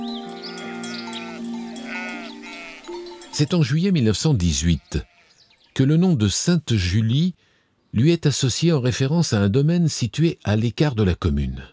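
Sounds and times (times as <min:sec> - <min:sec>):
sheep bleating: 0:00.3 - 0:03.0, 0:04.3 - 0:05.5
speech: 0:03.4 - 0:05.1, 0:05.8 - 0:11.7.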